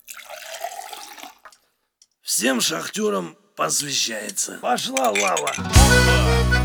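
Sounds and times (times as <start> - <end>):
liquid pouring into a glass: 0.0 - 1.6
speech: 2.4 - 6.5.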